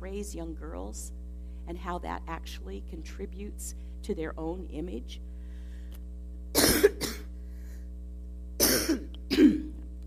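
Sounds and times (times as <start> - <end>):
low steady hum: 0.0 - 10.0
speech: 0.1 - 5.3
harsh double coughing: 6.6 - 7.3, 8.6 - 9.8.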